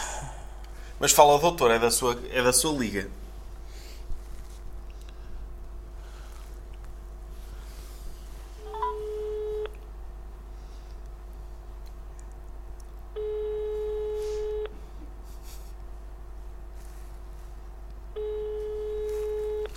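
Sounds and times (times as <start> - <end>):
constant low hum: 0.0 - 2.5, 3.1 - 19.7
speech: 1.0 - 3.2
telephone ringback tones as a call is placed: 8.6 - 9.7, 13.2 - 14.7, 18.2 - 19.7.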